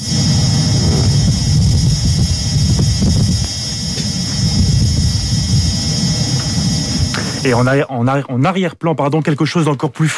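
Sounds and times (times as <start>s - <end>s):
Mars rover driving over rough ground: 0.0s - 7.7s
thin strident metallic whine of the rover: 0.0s - 8.2s
speech: 7.4s - 10.1s.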